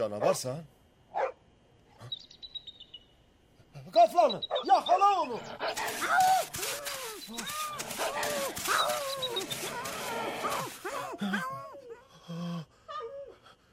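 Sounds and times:
speech: 0.0 - 0.8, 3.9 - 6.6
wolf-like wild animal whines and howls: 5.4 - 11.0.

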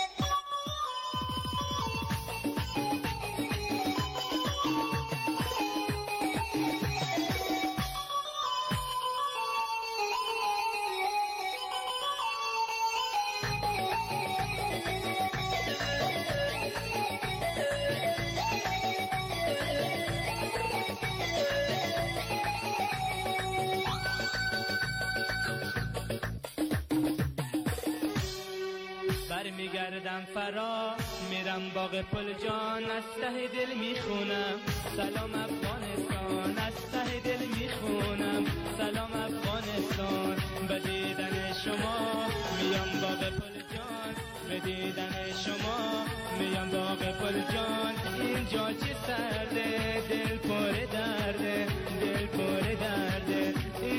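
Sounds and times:
instrumental song intro on a radio program: 0.0 - 53.9
speech: 31.9 - 35.6, 44.5 - 53.9.

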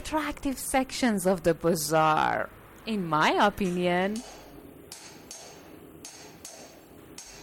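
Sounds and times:
speech: 0.1 - 4.4
hammers striking copper in the copper market of a bazaar: 3.6 - 7.4.

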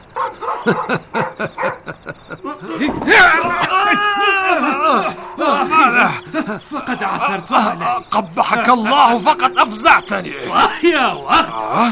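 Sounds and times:
vicious dog barking: 0.1 - 2.0
speech: 0.2 - 1.8, 6.5 - 11.9
laughter: 0.3 - 11.9.

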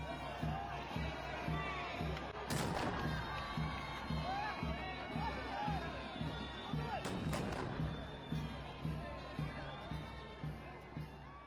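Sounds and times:
large outdoor crowd murmuring and cheering: 0.0 - 11.4
ceremonial salute cannon blasts at a flag ceremony: 2.5 - 3.4, 7.1 - 8.0.

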